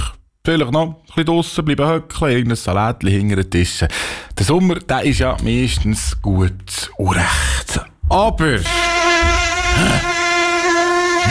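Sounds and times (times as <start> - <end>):
speech: 0.4 - 9.0, 9.8 - 10.1
mosquitoes buzzing around the head in hot summer weather: 8.6 - 11.2.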